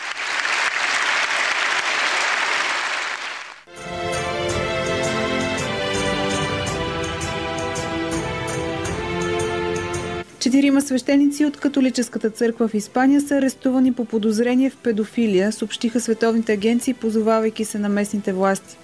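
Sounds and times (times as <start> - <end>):
hall audience applause: 0.0 - 3.7
loud rhythmic music with a steady beat: 3.7 - 10.2
speech: 10.5 - 18.8.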